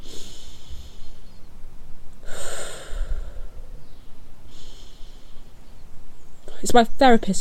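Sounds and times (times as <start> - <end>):
person taking deep breaths: 0.0 - 1.5, 2.2 - 5.8
faint hiss: 0.0 - 7.3
speech: 6.6 - 7.3.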